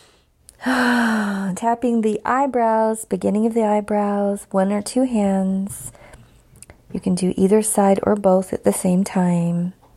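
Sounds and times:
person inhaling deeply during an emotional tapping exercise: 0.0s - 1.6s
speech: 0.6s - 6.0s, 6.9s - 9.8s.

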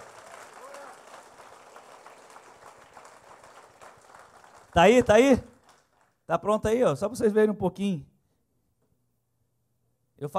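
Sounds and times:
sustained applause from a crowd: 0.0s - 6.2s
speech: 4.7s - 5.5s, 6.3s - 8.1s, 10.2s - 10.3s.

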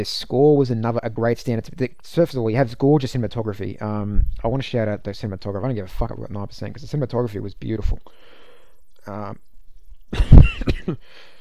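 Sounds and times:
speech: 0.0s - 8.4s, 9.0s - 9.5s, 10.1s - 11.3s
faint breath: 8.1s - 8.9s, 11.0s - 11.3s
coughing: 10.1s - 11.1s.

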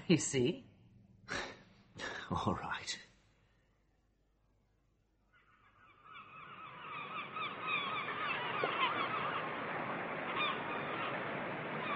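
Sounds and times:
speech: 0.1s - 0.7s, 2.3s - 3.1s
many birds honking goose-like calls by the sea: 5.3s - 11.9s.

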